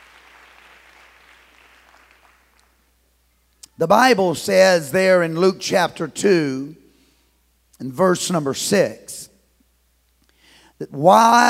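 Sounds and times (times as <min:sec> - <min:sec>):
audience clapping in praise: 0:00.0 - 0:03.0
speech: 0:03.8 - 0:06.8, 0:07.8 - 0:09.3, 0:10.8 - 0:11.4.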